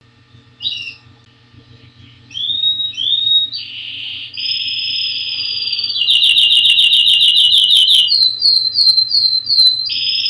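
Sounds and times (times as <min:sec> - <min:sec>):
canary singing: 0:00.6 - 0:01.0, 0:02.3 - 0:10.2.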